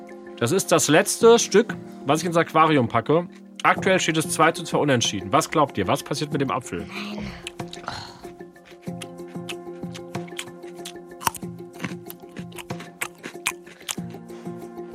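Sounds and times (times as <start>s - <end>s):
speech: 0.4s - 8.0s
wet sticky lip smacking while chewing food: 7.4s - 14.2s.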